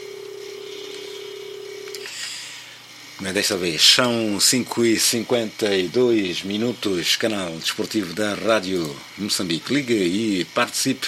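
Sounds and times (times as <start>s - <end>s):
electronic telephone ring during a live radio sports phone-in: 0.0s - 2.1s
hissy background: 0.0s - 11.0s
speech: 3.2s - 11.0s.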